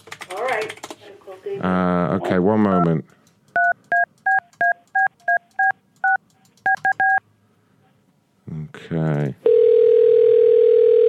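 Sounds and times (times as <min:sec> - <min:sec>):
speech: 0:00.6 - 0:03.2
telephone keypad dialing tones calling a cell phone number: 0:03.6 - 0:07.2, 0:09.5 - 0:11.0.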